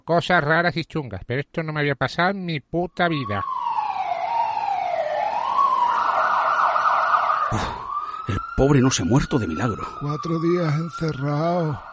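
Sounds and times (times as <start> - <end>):
speech: 0.0 - 3.6, 7.5 - 11.9
ambulance siren wailing: 2.9 - 11.9.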